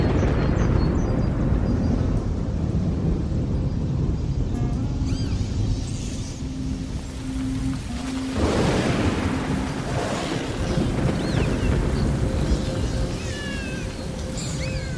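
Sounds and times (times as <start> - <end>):
heavy rain: 0.0 - 14.9
loud crack of thunder: 0.0 - 14.9
faint high-pitched cries: 5.0 - 5.6, 13.1 - 14.9.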